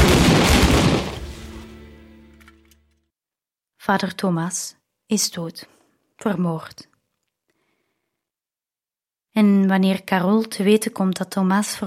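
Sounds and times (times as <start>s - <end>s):
firing squad gunfire volley: 0.0s - 1.7s
speech: 3.9s - 6.9s, 9.4s - 11.8s.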